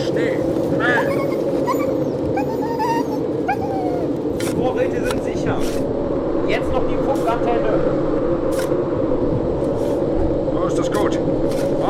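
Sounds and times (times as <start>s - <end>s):
loud steady roar: 0.0s - 11.8s
speech: 0.2s - 0.6s
dogs whimpering and yipping: 0.8s - 4.4s.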